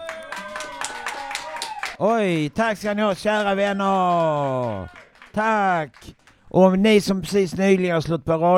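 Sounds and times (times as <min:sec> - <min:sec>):
studio audience applauding: 0:00.0 - 0:06.6
speech: 0:02.0 - 0:08.5.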